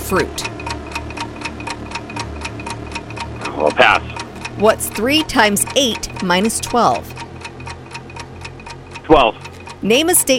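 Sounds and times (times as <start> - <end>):
low humming musical bed: 0.0 - 10.3
quiz countdown clock ticking: 0.0 - 10.3
speech: 0.1 - 0.6, 3.6 - 7.2, 9.1 - 10.3.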